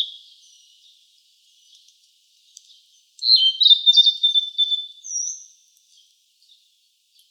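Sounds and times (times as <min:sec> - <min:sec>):
blue-and-white flycatcher singing: 0:03.2 - 0:05.5.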